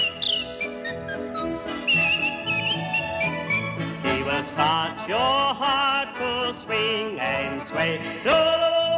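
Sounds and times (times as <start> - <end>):
person whistling a bright tune: 0.0 - 3.8
instrumental accompaniment: 0.0 - 8.8
speech: 4.3 - 8.8.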